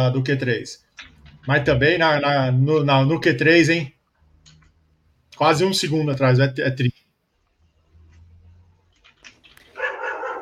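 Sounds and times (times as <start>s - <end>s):
speech: 0.0s - 4.0s, 5.4s - 7.0s
dog barking: 9.8s - 10.4s.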